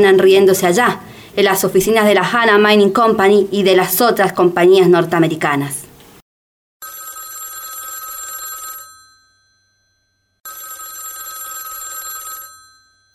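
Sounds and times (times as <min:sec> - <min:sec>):
speech: 0:00.0 - 0:05.8
telephone bell ringing: 0:06.8 - 0:13.1.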